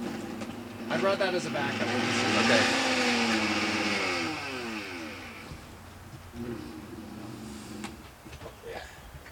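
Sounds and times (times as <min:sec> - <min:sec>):
immersion blender motor whirring and winding down: 0:00.0 - 0:05.5
speech: 0:00.9 - 0:02.9.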